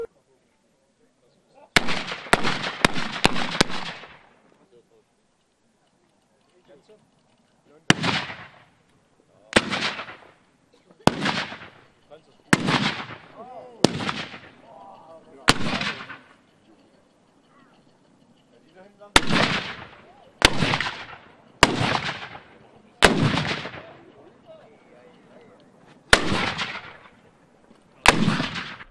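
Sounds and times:
faint murmur: 0:00.0 - 0:28.8
black powder cannon shots booming: 0:01.8 - 0:04.3, 0:07.9 - 0:08.7, 0:09.6 - 0:10.4, 0:11.0 - 0:11.8, 0:12.5 - 0:14.6, 0:15.5 - 0:16.3, 0:19.2 - 0:24.0, 0:26.1 - 0:27.2, 0:28.0 - 0:28.8.

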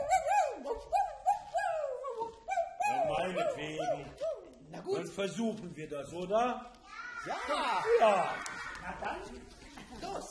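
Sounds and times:
person imitating a howling dog: 0:00.0 - 0:04.5
speech: 0:03.3 - 0:10.2.

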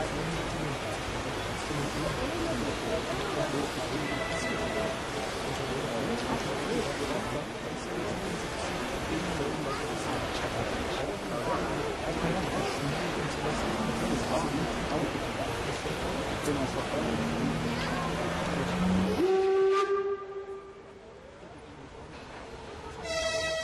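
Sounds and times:
loud steady rumbling and hissing train noise: 0:00.0 - 0:23.6
steam locomotive whistle at a railway grounds: 0:04.0 - 0:05.0, 0:18.8 - 0:20.8, 0:23.0 - 0:23.6.

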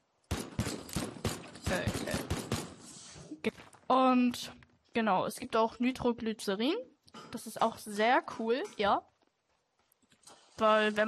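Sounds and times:
shotgun firing in a video game: 0:00.3 - 0:02.9
speech: 0:01.7 - 0:02.1, 0:03.4 - 0:09.1, 0:10.6 - 0:11.0.

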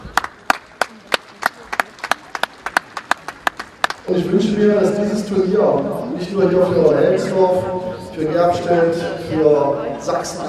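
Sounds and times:
audience applause following an award presentation: 0:00.0 - 0:04.1
speech: 0:04.1 - 0:10.4.

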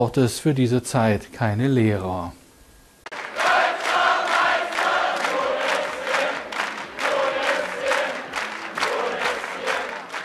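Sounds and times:
speech: 0:00.0 - 0:02.4
large crowd of fans cheering and chanting: 0:03.1 - 0:10.2.

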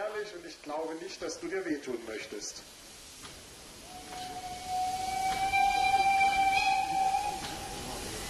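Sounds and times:
speech: 0:00.0 - 0:03.4
class 03 steam locomotive whistle: 0:03.8 - 0:08.2.

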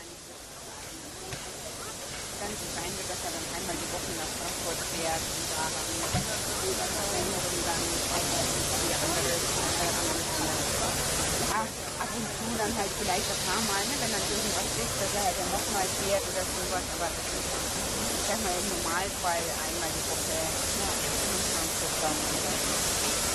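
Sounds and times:
steam locomotive hissing as it leaves the roundhouse: 0:00.0 - 0:23.3
speech: 0:02.5 - 0:10.0, 0:11.6 - 0:17.6, 0:18.3 - 0:20.9, 0:22.0 - 0:22.8.

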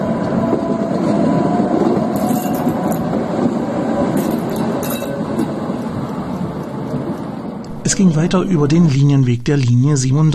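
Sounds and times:
tram rumbling along rails through a turning loop: 0:00.0 - 0:10.3
metallic clinks: 0:04.2 - 0:05.2
speech: 0:08.0 - 0:10.3.

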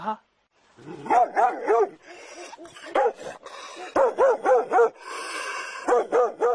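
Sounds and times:
speech: 0:00.0 - 0:05.1
dog barking aggressively: 0:01.0 - 0:02.0, 0:02.6 - 0:05.0, 0:05.8 - 0:06.5.

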